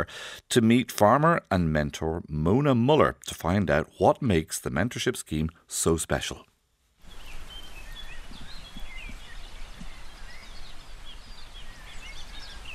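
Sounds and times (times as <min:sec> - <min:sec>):
speech: 0:00.0 - 0:06.5
open-air rustle: 0:06.5 - 0:12.7
several birds chirping and trilling outdoors on a farm in Clare in the morning: 0:07.0 - 0:12.7.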